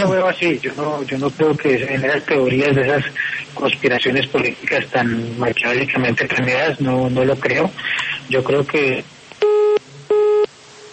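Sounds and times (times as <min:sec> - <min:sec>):
speech: 0:00.0 - 0:09.1
faint telephone line hiss: 0:00.0 - 0:10.9
telephone busy tone after a dropped phone call: 0:09.4 - 0:10.9.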